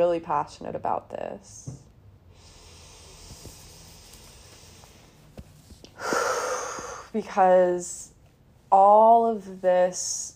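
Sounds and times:
speech: 0:00.0 - 0:01.9, 0:07.1 - 0:08.1, 0:08.7 - 0:10.3
deep breath: 0:02.3 - 0:05.3, 0:06.0 - 0:07.2.

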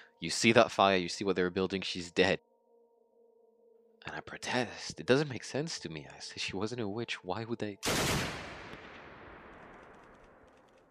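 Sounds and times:
speech: 0:00.2 - 0:02.5, 0:04.0 - 0:08.5
gunfire as soldiers start shooting: 0:07.8 - 0:10.9
faint sharp crack: 0:08.4 - 0:10.9.

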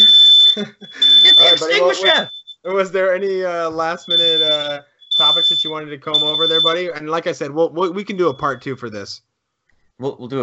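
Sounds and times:
shrill smoke alarm beeping in a kitchen: 0:00.0 - 0:02.7, 0:03.8 - 0:07.2, 0:08.2 - 0:08.7
laughter: 0:00.0 - 0:09.0
man talking faintly: 0:00.0 - 0:09.2, 0:10.0 - 0:10.4
speech: 0:00.6 - 0:00.8, 0:01.6 - 0:09.3, 0:10.0 - 0:10.4.

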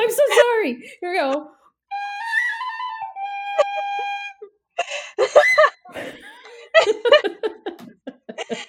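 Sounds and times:
speech: 0:00.6 - 0:01.6
bright warbling celebratory whistle: 0:01.9 - 0:04.5
laughter: 0:05.2 - 0:08.6.

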